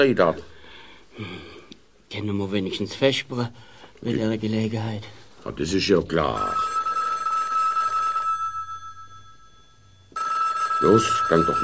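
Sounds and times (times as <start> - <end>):
speech: 0.0 - 0.5, 1.2 - 1.5, 2.1 - 6.7, 10.8 - 11.6
telephone bell ringing: 6.3 - 11.6.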